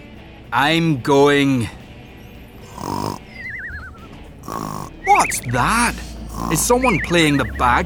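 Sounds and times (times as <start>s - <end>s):
speech: 0.5s - 1.8s, 5.2s - 7.8s
loud rasping snoring: 2.4s - 5.4s, 6.0s - 7.8s.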